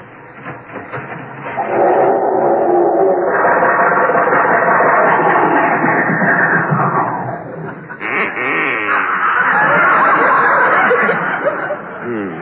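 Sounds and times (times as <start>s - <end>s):
human voice imitating car engine sputtering and failing to start in a house garage: 1.6s - 9.9s, 12.0s - 12.4s
laughter: 3.4s - 12.4s.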